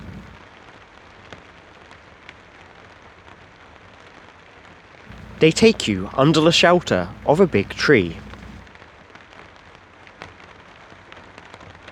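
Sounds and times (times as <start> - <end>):
steady rain: 0.0 - 0.4, 5.1 - 8.7
speech: 5.4 - 8.2.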